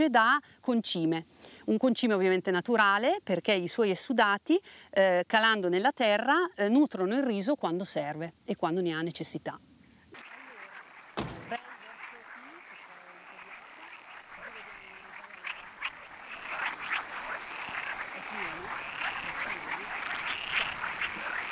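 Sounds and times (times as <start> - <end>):
speech: 0.0 - 9.7
chorus of frogs croaking in a rice field: 10.1 - 21.4
sharp knock: 11.2 - 11.6.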